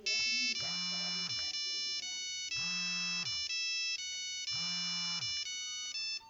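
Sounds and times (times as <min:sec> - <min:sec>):
Nokia 5510 ringtones: 0:00.0 - 0:06.2.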